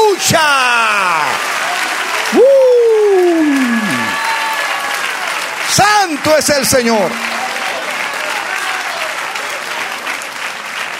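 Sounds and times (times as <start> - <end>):
crowd applauding in praise: 0.0 - 10.9
speech: 0.2 - 1.5, 5.8 - 7.4.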